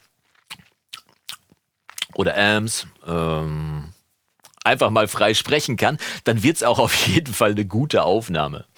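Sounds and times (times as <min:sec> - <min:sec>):
quiet wet lip smacks and mouth clicks: 0:00.0 - 0:02.2, 0:04.4 - 0:04.7
speech: 0:02.2 - 0:04.0, 0:04.7 - 0:08.7.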